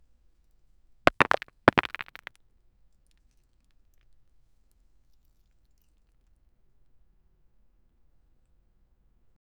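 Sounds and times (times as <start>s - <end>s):
small rocks falling and hitting: 1.1s - 2.3s.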